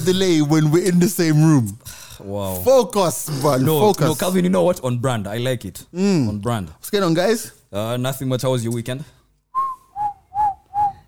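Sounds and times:
speech: 0.0 - 9.2
person whistling: 9.5 - 11.0.

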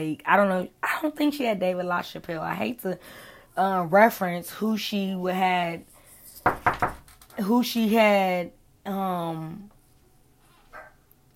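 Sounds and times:
speech: 0.0 - 9.7
dog barking at home: 10.7 - 11.0.

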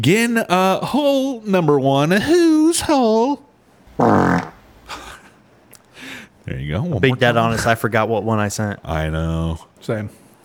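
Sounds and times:
speech: 0.0 - 4.5, 6.5 - 10.4
fart: 4.0 - 4.9.

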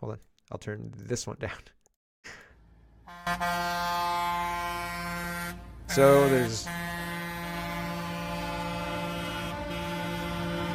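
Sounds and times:
speech: 0.0 - 2.4, 3.2 - 4.6, 5.9 - 6.9
truck air horns blaring: 3.0 - 10.7.

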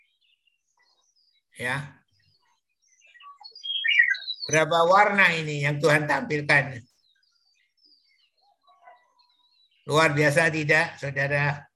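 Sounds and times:
birds chirping: 0.0 - 11.7
speech: 1.6 - 2.0, 4.5 - 6.9, 9.9 - 11.7.

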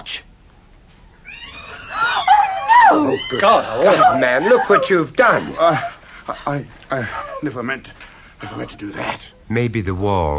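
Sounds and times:
startled kitten meowing: 1.2 - 3.4
laughter: 2.0 - 7.4
speech: 3.0 - 10.3.

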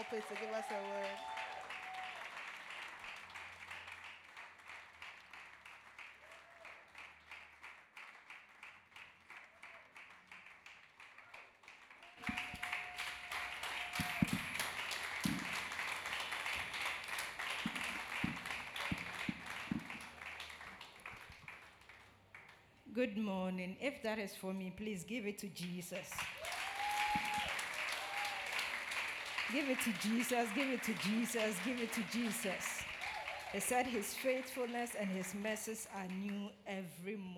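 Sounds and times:
speech: 0.0 - 1.5, 23.0 - 26.3, 29.5 - 32.8, 33.5 - 37.3
audience applauding: 0.0 - 22.6, 26.2 - 36.1
sharp taps and knocks: 14.0 - 15.6, 17.5 - 20.2.

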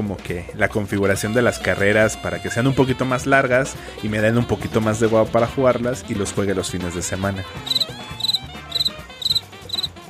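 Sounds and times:
speech: 0.0 - 8.0
crickets chirping: 7.7 - 9.9.

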